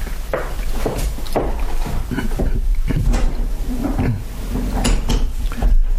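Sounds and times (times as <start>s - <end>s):
footsteps: 0.0s - 5.9s
wooden door being handled: 2.3s - 5.9s.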